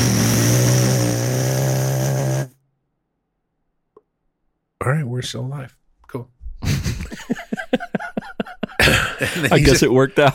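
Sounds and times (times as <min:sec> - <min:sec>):
voice imitating a bus rolling over a rumble strip: 0:00.0 - 0:02.6
speech: 0:05.2 - 0:07.8, 0:09.2 - 0:10.3
laughter: 0:06.6 - 0:10.3.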